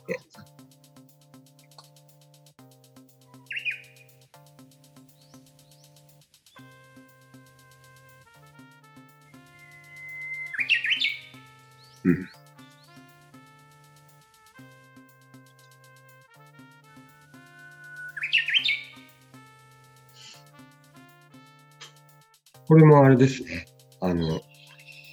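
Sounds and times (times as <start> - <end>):
Japanese bush warbler singing a regional dialect of its song: 3.3 - 4.2, 5.0 - 6.8, 9.3 - 13.0, 17.4 - 19.3, 24.0 - 25.1
speech: 12.1 - 12.3, 22.7 - 24.4.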